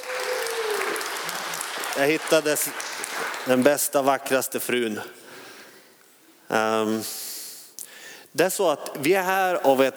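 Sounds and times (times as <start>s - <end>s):
crowd applauding: 0.0s - 3.6s
speech: 2.0s - 5.2s, 6.5s - 7.2s, 8.4s - 9.9s.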